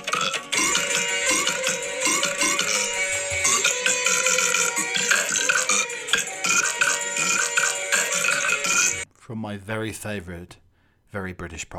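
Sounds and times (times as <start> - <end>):
loud drawn-out belching: 0.1 - 9.0
speech: 9.4 - 11.7.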